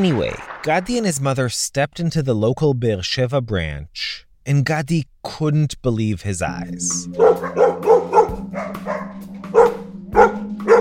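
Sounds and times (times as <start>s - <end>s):
speech: 0.0s - 8.9s
dogs barking: 7.0s - 10.7s.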